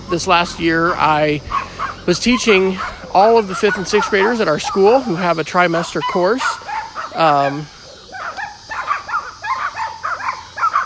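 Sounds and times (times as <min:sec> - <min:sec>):
dogs barking excitedly with high-pitched yaps and yips: 0:00.0 - 0:10.8
speech: 0:00.1 - 0:06.6, 0:07.2 - 0:07.8.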